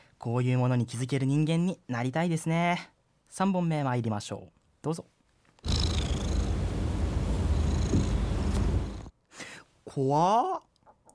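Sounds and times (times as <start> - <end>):
speech: 0.2 - 5.8, 9.9 - 10.7
cat purring: 5.6 - 9.1.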